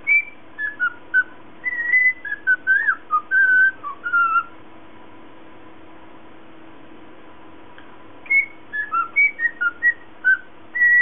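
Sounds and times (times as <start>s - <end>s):
lutino cockatiel whistling a tune: 0.0s - 4.5s, 8.2s - 10.9s
faint steady hum: 0.0s - 10.9s.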